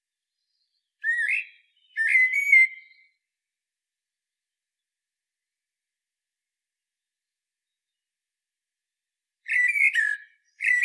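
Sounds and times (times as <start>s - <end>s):
common blackbird Turdus merula singing fluty whistled phrases: 0.4s - 3.2s, 9.5s - 10.8s.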